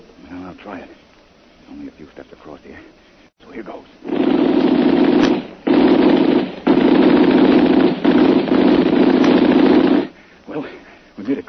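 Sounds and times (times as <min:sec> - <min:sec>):
speech: 0:00.6 - 0:01.0, 0:01.7 - 0:05.6, 0:11.3 - 0:11.4
gunfire from a gun in long rapid bursts: 0:04.0 - 0:10.2.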